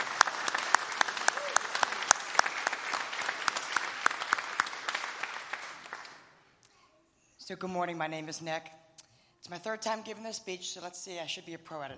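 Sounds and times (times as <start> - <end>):
audience applause: 0.0 - 6.3
speech: 7.5 - 8.8, 9.5 - 11.9.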